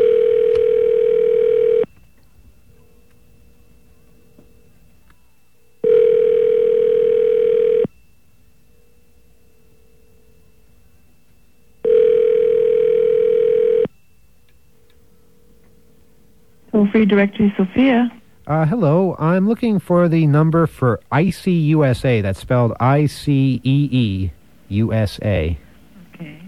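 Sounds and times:
telephone tone: 0.0s - 2.2s, 5.8s - 8.0s, 11.8s - 14.0s
speech: 16.9s - 25.6s.

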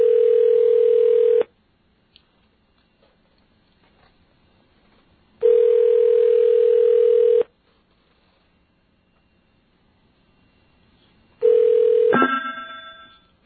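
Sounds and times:
landline telephone ringing over the line: 0.0s - 1.5s, 5.4s - 7.5s, 11.4s - 13.3s.

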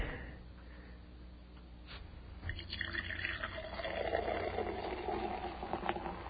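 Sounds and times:
soda pouring fizzing: 2.5s - 6.2s.

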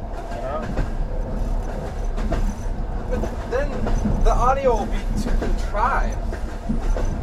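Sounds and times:
train rolling on rails: 0.0s - 7.2s
speech: 4.5s - 6.2s.

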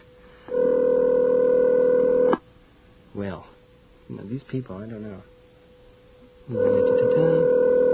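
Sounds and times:
telephone line tone as a call is placed: 0.5s - 2.3s, 6.5s - 7.9s
speech: 4.1s - 5.4s, 6.5s - 7.6s.

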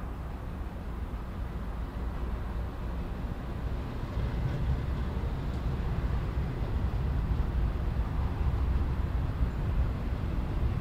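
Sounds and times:
diesel freight train with two diesel engines carrying empty garbage containers passing: 0.0s - 10.7s.

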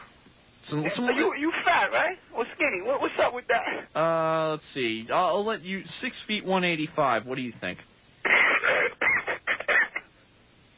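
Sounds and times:
speech: 0.7s - 7.9s
harsh, nasty cough in rough bursts: 8.2s - 10.1s.

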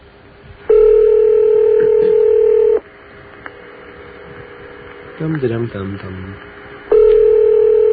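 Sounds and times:
quiet telephone line noise: 0.0s - 7.9s
telephone ringback tone on a call to Ottawa, Canada: 0.7s - 2.8s, 6.9s - 7.9s
speech: 5.2s - 6.6s.

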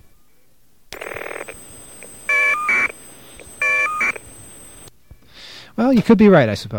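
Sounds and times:
buzzy electronic burst: 1.0s - 4.9s
caller ID data tones from two telephone calls: 1.0s - 4.9s
speech: 5.8s - 6.7s.

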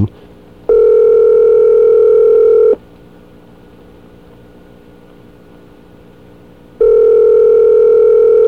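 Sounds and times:
speech: 0.0s - 0.2s
faint hum: 0.0s - 8.4s
phone line ringback tone: 0.7s - 2.8s, 6.8s - 8.4s.

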